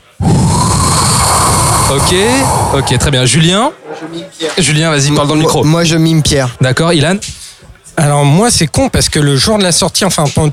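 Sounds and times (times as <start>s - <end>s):
human voice imitating the wind: 0.0s - 3.4s
speech: 1.9s - 7.4s, 8.0s - 10.5s.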